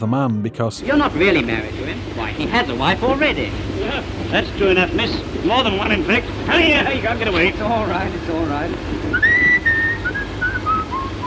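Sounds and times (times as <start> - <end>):
speech: 0.0 - 9.4
low hum: 0.8 - 11.2
man whistling a light cheerful melody: 9.1 - 11.2.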